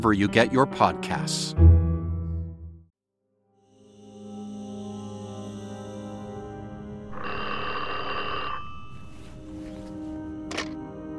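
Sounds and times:
speech: 0.0 - 1.8
telephone ringing with a buzzing bell tone: 7.1 - 9.6.

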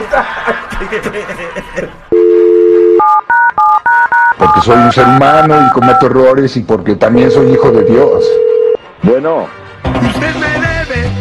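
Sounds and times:
laughter: 0.0 - 2.1
speech: 0.2 - 2.0, 4.7 - 8.4, 9.0 - 10.6
telephone keypad beeps as a number is dialed: 2.2 - 6.1.

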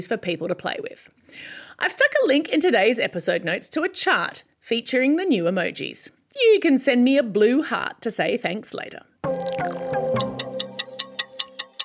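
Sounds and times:
speech: 0.0 - 10.2
clock ticking: 9.2 - 11.8.

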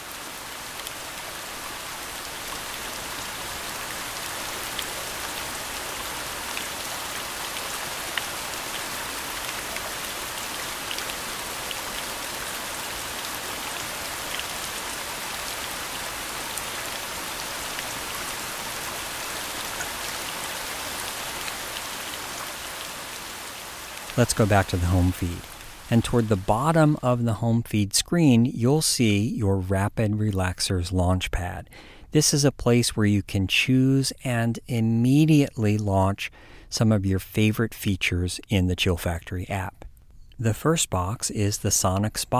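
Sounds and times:
steady rain pattering on a surface: 0.0 - 27.0
speech: 24.2 - 39.8, 40.4 - 42.3.

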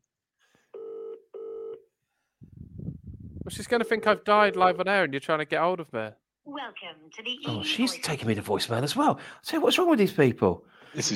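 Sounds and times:
telephone tones as a call is placed: 0.8 - 1.8
speech: 3.5 - 11.1.

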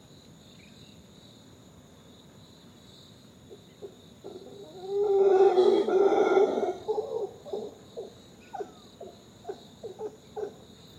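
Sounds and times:
crickets buzzing: 0.0 - 10.9
female howler monkey howling at dawn in the canopy: 3.8 - 10.6.

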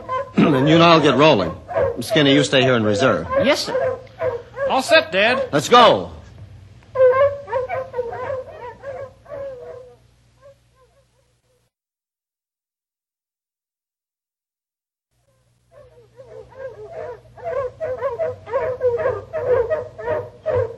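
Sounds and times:
hounds in one harness baying on a scent trail: 0.0 - 5.6, 7.0 - 11.2, 15.7 - 20.7
speech: 0.4 - 6.2.

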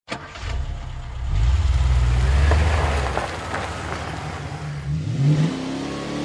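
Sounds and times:
blue Ford Mustang V6 engine starting up and revving: 0.4 - 6.2.

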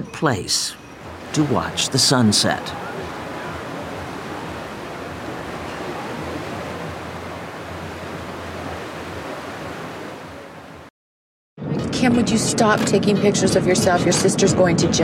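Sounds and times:
speech: 0.1 - 2.9, 12.2 - 15.0
ocean water breaking against a ship's hull: 0.8 - 10.9.

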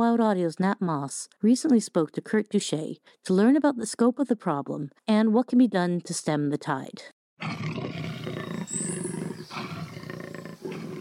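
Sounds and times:
speech: 0.0 - 7.8
jaguar Panthera onca roaring: 7.4 - 10.9.

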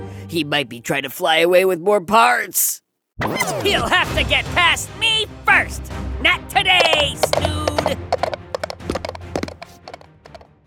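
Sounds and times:
speech: 0.3 - 8.2
hooves of a mechanical pygmy goat clip-clopping: 6.6 - 10.5.

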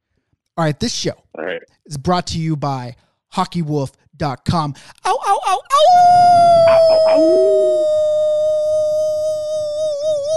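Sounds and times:
speech: 0.6 - 8.1
man at a microphone imitating a wolf howl: 5.7 - 10.3.

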